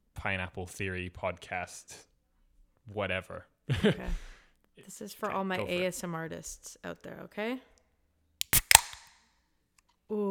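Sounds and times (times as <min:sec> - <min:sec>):
speech: 0:00.2 - 0:02.1, 0:02.9 - 0:07.7
laughter: 0:03.7 - 0:04.2
drink can cracked open into a microphone: 0:08.4 - 0:09.2.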